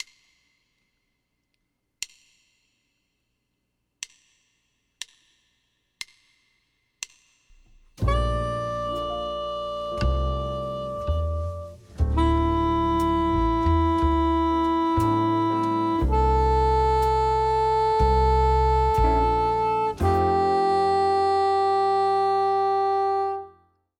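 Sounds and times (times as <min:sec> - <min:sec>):
B-flat soprano: 0:08.0 - 0:23.6.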